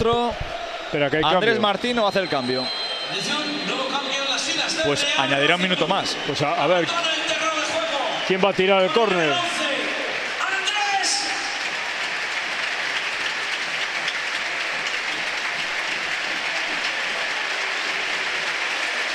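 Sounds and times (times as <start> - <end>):
speech: 0.0 - 4.1, 4.7 - 7.0, 8.3 - 9.5
large stadium crowd applauding and cheering: 0.0 - 19.1
brief high shout or whistle: 0.5 - 11.6.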